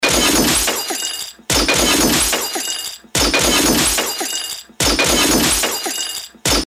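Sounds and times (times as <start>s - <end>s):
gun loop: 0.0s - 6.6s.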